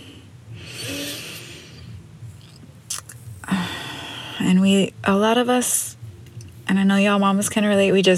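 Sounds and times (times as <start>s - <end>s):
slow deep breath into the microphone: 0.0s - 2.1s, 3.4s - 4.5s
small mouth and lip noises: 2.4s - 3.4s
speech: 4.4s - 6.0s, 6.7s - 8.1s.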